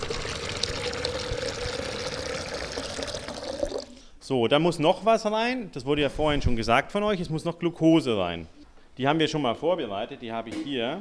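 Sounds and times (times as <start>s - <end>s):
water poured into a container of sugar for making candy: 0.0s - 4.0s
speech: 4.3s - 10.9s.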